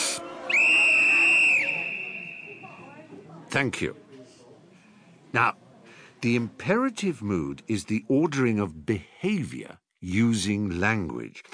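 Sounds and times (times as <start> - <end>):
sharp steady whistle blast: 0.0 - 2.8
faint murmur of a crowd: 0.0 - 8.7
speech: 3.5 - 4.0, 5.3 - 5.6, 6.2 - 11.5.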